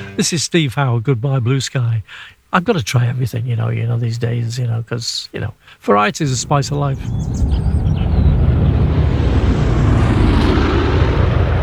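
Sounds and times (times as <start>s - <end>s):
speech: 0.2s - 7.8s
airplane passing overhead: 6.3s - 11.6s.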